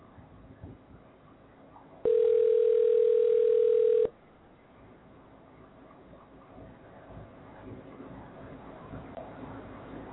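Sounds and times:
faint noise: 0.0s - 10.1s
telephone ringback tone: 2.1s - 4.1s.

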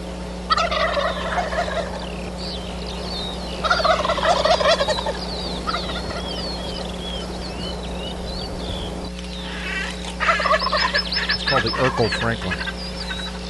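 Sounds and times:
steady low hum: 0.0s - 13.4s
wild turkeys gobbling at dawn roost: 0.4s - 13.4s
speech: 11.9s - 12.7s.

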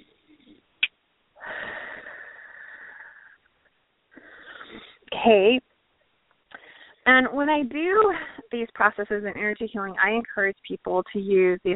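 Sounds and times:
deep breath in during a guided energy-healing exercise: 1.4s - 3.4s, 6.6s - 7.0s
speech: 5.2s - 5.6s, 7.2s - 11.7s.

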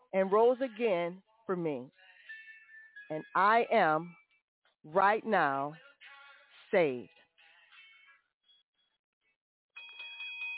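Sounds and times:
speech: 0.1s - 2.0s, 3.1s - 4.2s, 4.8s - 5.8s, 6.7s - 7.2s
bright bell ringing: 2.3s - 4.2s, 9.8s - 10.5s.

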